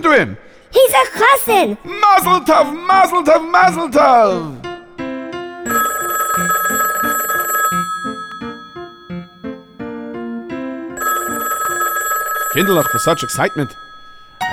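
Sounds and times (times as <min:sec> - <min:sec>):
speech: 0:00.0 - 0:04.6, 0:12.6 - 0:13.9
telephone ringing with shrill electronic trill: 0:05.6 - 0:14.5.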